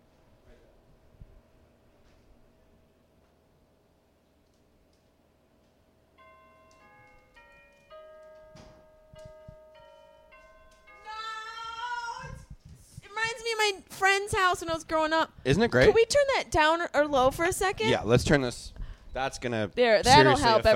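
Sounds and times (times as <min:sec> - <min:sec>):
old-fashioned doorbell chime melody of bell-like tones: 0:06.2 - 0:12.4
speech: 0:13.6 - 0:20.7.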